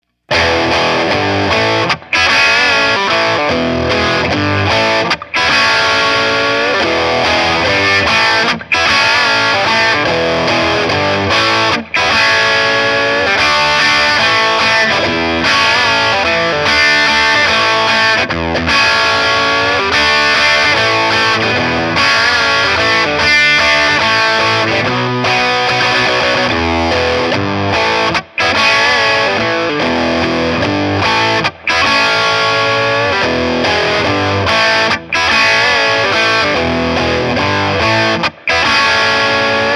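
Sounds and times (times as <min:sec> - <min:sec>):
bright dirty rhythm loop: 0:00.3 - 0:39.6.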